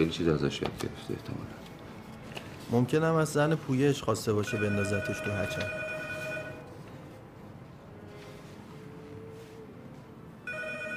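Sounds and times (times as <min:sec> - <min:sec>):
speech: 0:00.0 - 0:01.7, 0:02.7 - 0:05.8
telephone ringing with an electronic tone: 0:04.4 - 0:06.7, 0:10.5 - 0:10.9.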